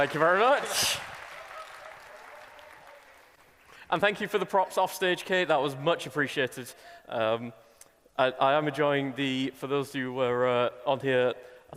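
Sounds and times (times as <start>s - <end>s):
speech: 0.0s - 1.1s, 3.9s - 7.6s, 8.2s - 11.7s
applause from an audience: 0.0s - 3.9s.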